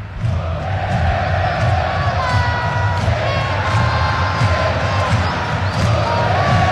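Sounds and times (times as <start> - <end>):
football stadium crowd of fans roaring and chanting a player's name: 0.0 - 6.7.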